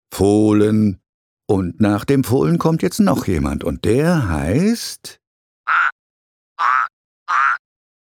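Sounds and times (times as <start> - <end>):
speech: 0.2 - 5.2
frog croaking: 5.7 - 6.0, 6.6 - 7.7.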